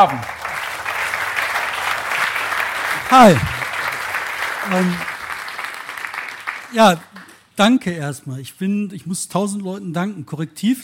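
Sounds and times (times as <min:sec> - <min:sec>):
speech: 0:00.0 - 0:00.4, 0:03.1 - 0:03.6, 0:04.6 - 0:05.1, 0:06.7 - 0:10.8
audience applause: 0:00.0 - 0:07.4.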